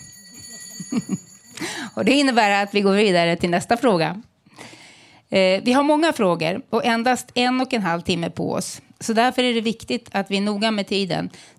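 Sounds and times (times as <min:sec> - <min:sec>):
cowbell rung at a moderated discussion: 0:00.0 - 0:03.2
laughter: 0:00.8 - 0:01.3
speech: 0:00.9 - 0:01.3, 0:02.0 - 0:04.3, 0:05.3 - 0:11.5.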